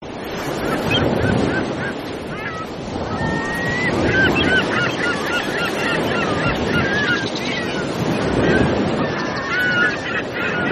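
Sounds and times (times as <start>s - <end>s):
gull calling over surf: 0.7s - 10.6s.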